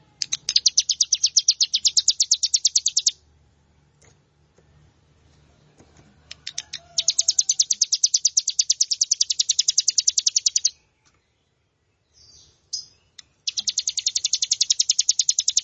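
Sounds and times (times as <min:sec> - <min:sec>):
plain prinia song: 0:00.0 - 0:15.6.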